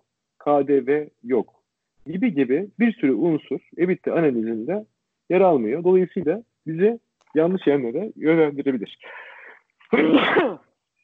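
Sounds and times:
speech: 0:00.4 - 0:09.3, 0:09.9 - 0:10.6
loud sneeze: 0:10.0 - 0:10.6.

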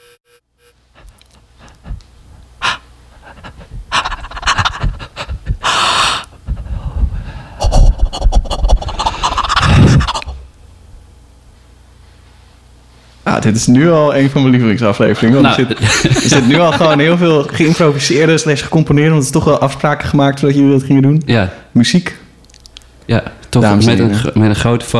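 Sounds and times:
rasping gasps and snorts: 0:01.0 - 0:06.8, 0:07.6 - 0:10.4
heavy rapid panting: 0:01.0 - 0:10.4
laughter: 0:03.3 - 0:05.8, 0:15.0 - 0:18.4
speech: 0:13.4 - 0:22.2, 0:23.1 - 0:24.9.

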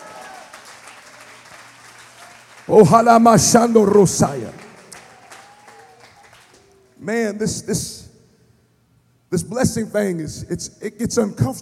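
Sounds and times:
audience clapping hands in dense steady applause: 0:00.0 - 0:06.9
speech: 0:02.7 - 0:04.6, 0:07.1 - 0:08.0, 0:09.3 - 0:11.6.

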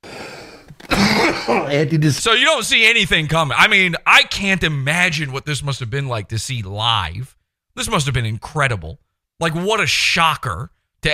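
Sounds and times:
breathy noise: 0:00.0 - 0:01.8
man coughing after a dab hit: 0:00.8 - 0:01.9
speech: 0:01.4 - 0:11.1.

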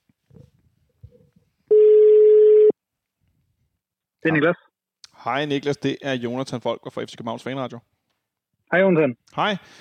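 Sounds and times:
ringback tone from an outgoing phone call: 0:01.7 - 0:02.7
speech: 0:04.2 - 0:04.6, 0:05.2 - 0:07.9, 0:08.7 - 0:09.7.

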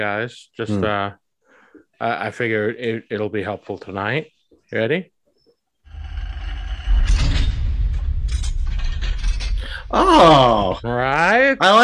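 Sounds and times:
speech: 0:00.0 - 0:01.2, 0:02.0 - 0:05.1, 0:09.9 - 0:11.8
heavy vault door rumbling shut: 0:05.9 - 0:10.6.

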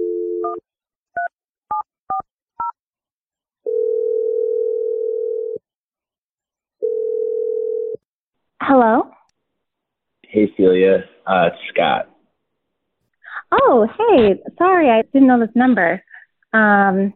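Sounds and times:
telephone dial tone: 0:03.6 - 0:05.6, 0:06.8 - 0:08.0
speech: 0:08.7 - 0:09.1, 0:10.4 - 0:12.1, 0:13.5 - 0:17.1.

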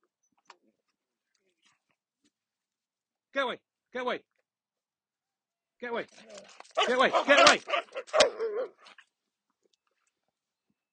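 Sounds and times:
speech: 0:03.4 - 0:04.3, 0:05.8 - 0:09.0
dog barking: 0:06.8 - 0:08.9.

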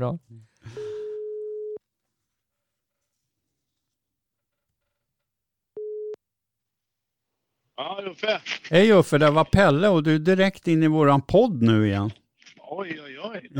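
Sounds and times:
speech: 0:00.0 - 0:00.8, 0:07.8 - 0:13.5
telephone ringback tone of an outgoing call: 0:00.8 - 0:01.8, 0:05.8 - 0:06.2.

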